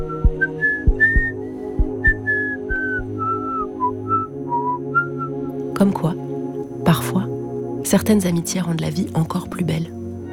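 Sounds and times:
person whistling a cheerful wandering melody: 0.0s - 5.4s
soft musical backing with regular low plucked notes: 0.0s - 10.3s
speech: 5.8s - 6.2s, 6.9s - 10.0s.

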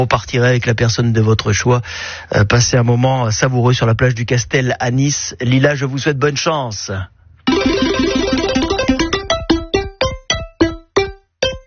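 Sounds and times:
speech: 0.0s - 7.8s
spinning prize wheel of a radio quiz game clicking: 7.5s - 11.6s.

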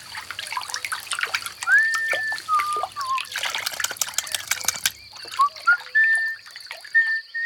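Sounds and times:
water trickling and dribbling: 0.0s - 7.4s
clear whistled tones: 1.6s - 3.3s, 4.2s - 7.4s.

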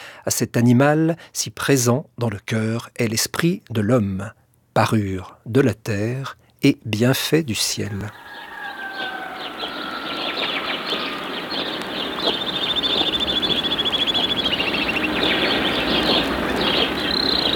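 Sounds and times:
speech: 0.2s - 8.4s
birds singing and chirping: 8.0s - 17.5s.

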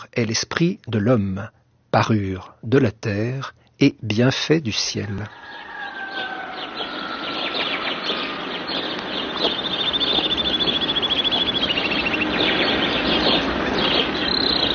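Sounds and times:
speech: 0.1s - 6.3s
dense chorus of birds singing: 5.3s - 14.7s.

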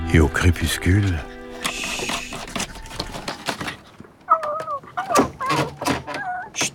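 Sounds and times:
speech: 0.1s - 1.3s
owl hooting at dusk in an attic where it nests: 1.2s - 3.7s, 4.3s - 6.7s
clattering and rustling noise: 1.5s - 6.7s.

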